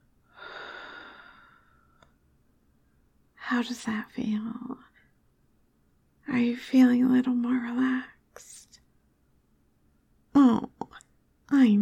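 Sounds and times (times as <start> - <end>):
slow deep breath during a guided relaxation exercise: 0.3 - 2.1
speech: 3.5 - 4.9, 6.3 - 8.7, 11.5 - 11.7.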